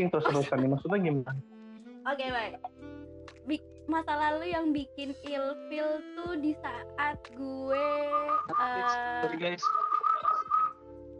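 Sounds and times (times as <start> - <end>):
laughter: 0.0 - 1.4
speech: 0.0 - 9.8
bird calling at night with warbling whistled notes: 9.6 - 10.8.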